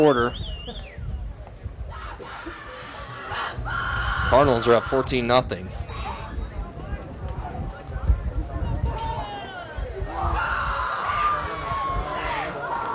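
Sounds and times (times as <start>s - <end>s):
speech: 0.0s - 0.6s, 4.3s - 5.8s
shouts: 1.9s - 5.1s, 8.7s - 12.9s
student section stadium crowd cheering at football game: 1.9s - 5.3s, 5.9s - 12.9s.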